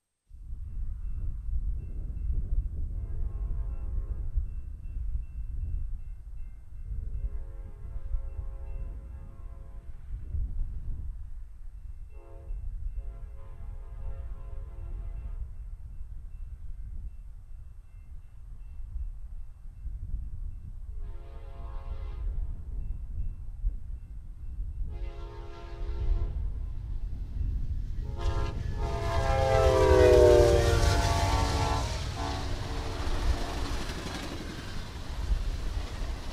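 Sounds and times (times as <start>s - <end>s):
steady heavy low rumble of the moving passenger train: 0.3s - 36.3s
westbound California Zephyr passenger train horn sounding chord blasts: 2.9s - 4.5s, 7.1s - 10.1s, 12.1s - 15.6s, 21.0s - 22.6s, 24.9s - 26.7s, 28.0s - 33.6s.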